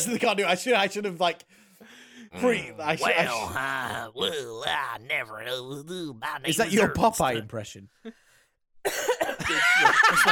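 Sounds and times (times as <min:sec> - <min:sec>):
speech: 0:00.0 - 0:08.2, 0:08.8 - 0:10.2
person coughing with a raspy throaty rattle: 0:08.8 - 0:09.6
laughter: 0:09.4 - 0:10.2.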